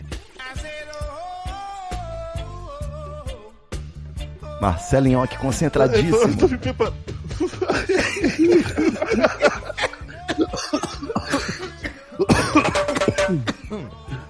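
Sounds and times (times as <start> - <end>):
speech: 4.6 - 9.6
people laughing and chuckling: 5.9 - 14.0
person coughing: 7.6 - 13.9.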